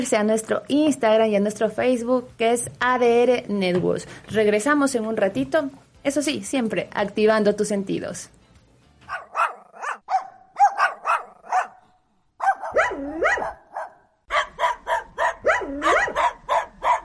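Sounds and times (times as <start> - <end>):
speech: 0.0 - 8.4
dog barking: 9.1 - 17.0.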